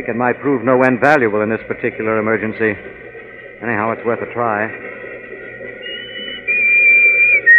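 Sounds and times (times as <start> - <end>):
speech: 0.0 - 3.0, 3.6 - 5.0
whistle blown loudly: 5.8 - 7.5.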